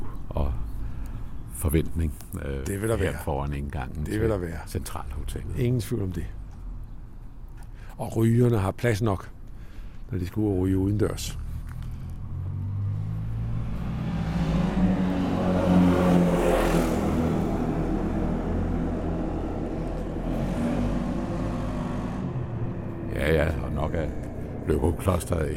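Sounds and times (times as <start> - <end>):
street traffic in front of a hotel entrance in Løgum Kloster, Denmark: 0.0 - 25.5
speech: 1.6 - 6.4, 8.0 - 9.4, 10.1 - 11.4, 25.2 - 25.5
car passing by with engine rumble: 11.4 - 25.5.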